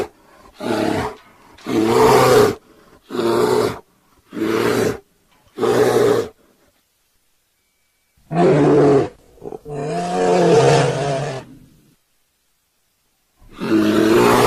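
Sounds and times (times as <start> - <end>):
bear snarling and giving deep rumbling roars: 0.0 - 6.4, 8.3 - 11.8, 13.4 - 14.4.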